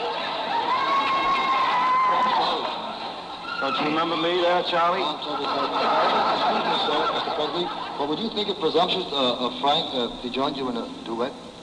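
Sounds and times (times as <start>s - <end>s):
laughter: 0.0s - 8.8s
audience women screaming at male singer: 0.2s - 2.8s
speech: 3.6s - 11.4s.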